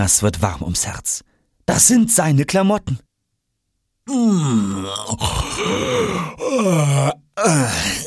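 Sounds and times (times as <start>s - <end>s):
speech: 0.0s - 3.1s, 4.1s - 8.0s
performed exaggerated drawn-out yawn: 4.1s - 8.0s.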